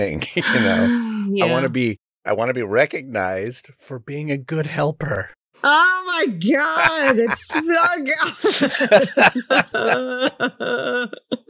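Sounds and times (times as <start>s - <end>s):
laughter: 0.0s - 2.0s, 6.5s - 11.4s
speech: 0.0s - 11.4s
person coughing with rough voiced hacking: 0.4s - 1.7s, 8.3s - 10.4s.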